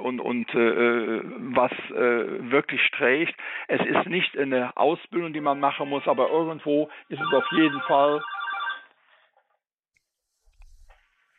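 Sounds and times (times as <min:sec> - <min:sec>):
speech: 0:00.0 - 0:08.4
electronic telephone ringing: 0:07.2 - 0:09.0.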